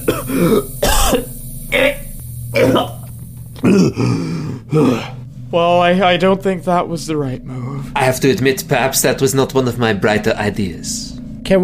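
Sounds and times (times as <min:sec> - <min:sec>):
person coughing harsh rasping bursts: 0:00.0 - 0:03.0, 0:03.6 - 0:05.2
speech: 0:00.2 - 0:00.8, 0:03.7 - 0:11.6.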